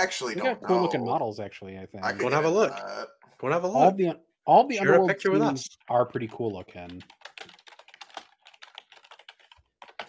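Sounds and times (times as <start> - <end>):
speech: 0.0 - 7.2
rapid furious typing on a computer keyboard: 6.1 - 10.0.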